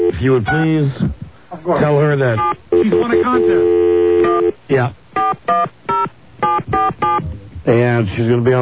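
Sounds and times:
speech: 0.2 - 3.9, 4.7 - 5.8, 6.9 - 8.6
touch-tone beeps as a telephone number is dialed: 2.4 - 4.5, 5.2 - 7.3.

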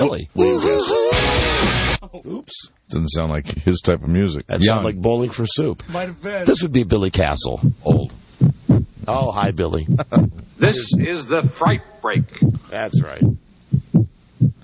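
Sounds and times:
speech: 0.1 - 1.0, 2.2 - 8.2, 9.1 - 13.4
heartbeat: 7.5 - 14.6.

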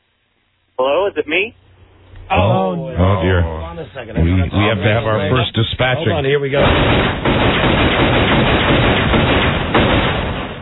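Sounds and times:
speech: 0.8 - 1.6, 2.3 - 8.9
gunfire sound effect: 6.6 - 10.5.

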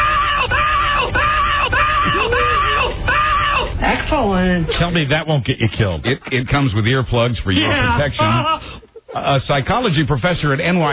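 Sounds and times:
woman screaming: 0.0 - 4.0
speech: 4.6 - 10.9.

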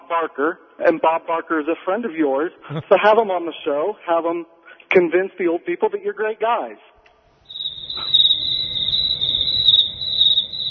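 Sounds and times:
faint low noise: 0.0 - 10.6
speech: 0.1 - 6.9
crickets chirping: 7.4 - 10.6.

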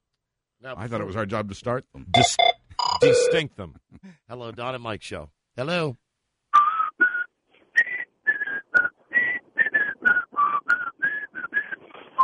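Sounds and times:
speech: 0.6 - 6.0
person whistling a TV theme tune: 6.6 - 12.2.

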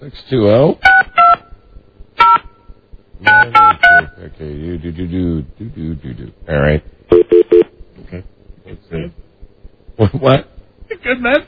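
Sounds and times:
speech: 0.0 - 0.9, 4.4 - 6.9, 10.2 - 10.5
touch-tone phone beeps dialing a fax number: 3.3 - 4.2, 7.1 - 7.7.

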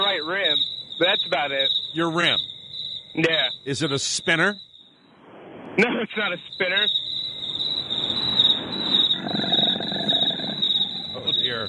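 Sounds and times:
crickets chirping: 0.0 - 11.6
speech: 0.1 - 2.6, 3.2 - 4.7, 5.8 - 7.0.

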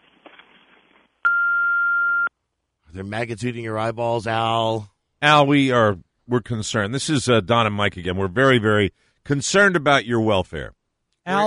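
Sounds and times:
answering machine beep: 1.3 - 2.3
speech: 2.9 - 11.4.

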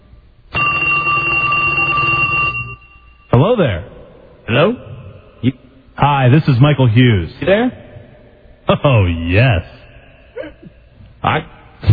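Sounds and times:
telephone bell ringing: 0.5 - 3.3
speech: 3.4 - 3.9, 4.5 - 7.8, 8.7 - 9.8, 11.2 - 11.9.

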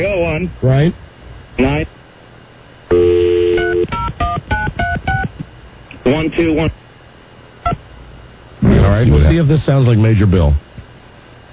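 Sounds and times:
speech: 0.0 - 2.0, 6.3 - 6.8, 9.0 - 10.7
steady telephone tone: 2.9 - 5.4.

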